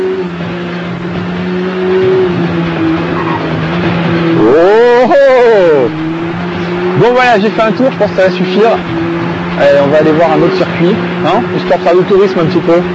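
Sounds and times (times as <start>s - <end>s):
superbike engine revving in a racing video game: 0.0s - 12.9s
speech: 7.2s - 9.0s, 9.6s - 12.9s.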